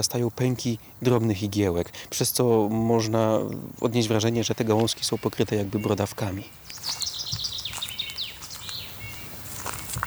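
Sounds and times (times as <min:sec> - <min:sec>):
speech: 0:00.0 - 0:07.0
chaffinch song in a forest: 0:00.0 - 0:10.0
steady hiss: 0:00.0 - 0:10.0
soft bullfinch calls in a forest: 0:03.0 - 0:10.0.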